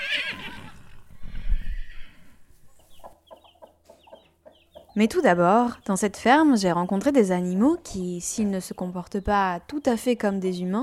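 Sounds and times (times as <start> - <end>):
horse neighing on a farm in Brittany France: 0.0 - 2.3
faint farmyard background: 0.0 - 10.8
speech: 5.0 - 10.8.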